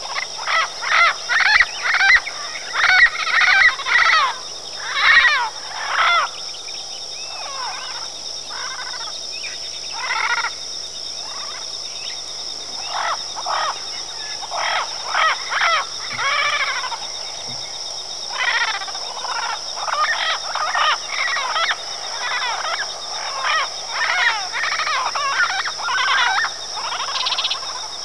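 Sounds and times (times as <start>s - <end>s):
parrots calling: 0.0s - 6.3s, 12.8s - 17.7s, 18.3s - 27.8s.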